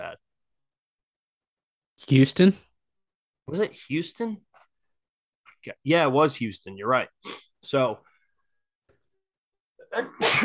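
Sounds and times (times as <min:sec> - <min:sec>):
speech: 0:02.0 - 0:02.7, 0:03.5 - 0:04.5, 0:05.6 - 0:08.1, 0:09.9 - 0:10.4
powerful human sneeze: 0:09.9 - 0:10.4.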